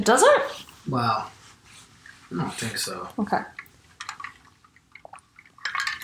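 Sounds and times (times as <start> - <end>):
speech: 0.0 - 1.4, 2.3 - 3.6
water sloshing while someone drinks: 2.0 - 6.0.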